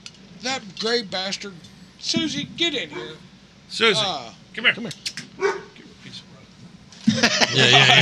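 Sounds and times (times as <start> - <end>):
room murmur: 0.1 - 8.0
speech: 0.4 - 5.1, 7.2 - 8.0
dog barking: 2.9 - 3.2, 5.4 - 5.8
laughter: 7.0 - 8.0.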